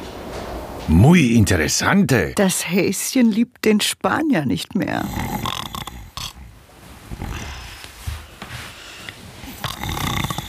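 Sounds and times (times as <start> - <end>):
speech: 0.9 - 5.5
loud rough snoring: 5.0 - 7.7, 9.4 - 10.4.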